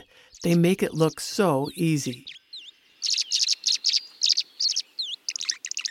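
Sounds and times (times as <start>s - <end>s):
swallow chirping over a pond: 0.0s - 5.8s
speech: 0.4s - 2.3s.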